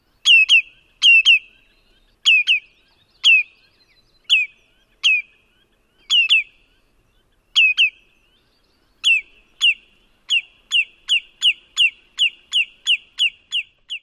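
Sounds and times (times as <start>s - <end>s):
bird too-too and single-note calls: 0.0s - 14.0s.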